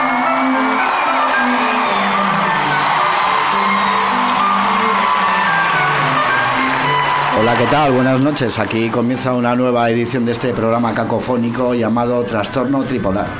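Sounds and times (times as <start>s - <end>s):
applause: 0.0s - 9.0s
crowd cheering and whooping as performers are welcomed: 0.0s - 9.2s
speech: 7.5s - 13.3s.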